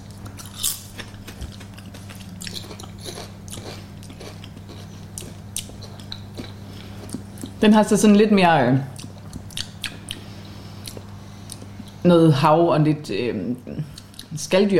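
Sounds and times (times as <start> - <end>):
person chewing crunchy sugar kelp seaweed chips: 0.0 - 7.6, 8.9 - 12.0
low steady hum: 0.0 - 14.7
speech: 7.6 - 8.9, 12.1 - 14.7.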